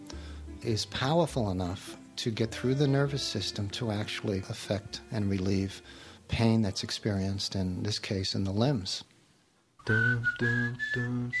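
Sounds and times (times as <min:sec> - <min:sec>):
rich harmonic pop backing: 0:00.0 - 0:08.0
speech: 0:00.6 - 0:09.1, 0:09.8 - 0:11.3
bright whistled pop melody: 0:09.8 - 0:11.3.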